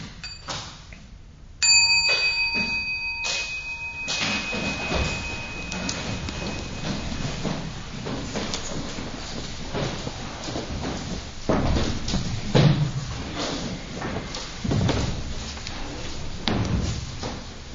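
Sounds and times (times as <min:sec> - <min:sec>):
steady hiss: 0:00.0 - 0:17.7
small meditation bell being struck: 0:00.2 - 0:00.6, 0:01.6 - 0:08.6
soft rustling: 0:02.7 - 0:17.7.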